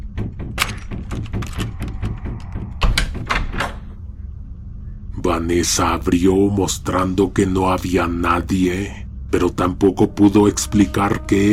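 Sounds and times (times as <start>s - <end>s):
door rattling and shaking hard in its frame: 0.0s - 4.0s
speech: 5.3s - 11.5s.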